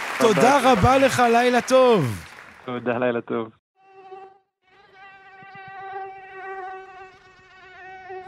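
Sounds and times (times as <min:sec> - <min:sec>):
speech: 0:00.2 - 0:03.6
horsefly buzzing: 0:03.8 - 0:08.2.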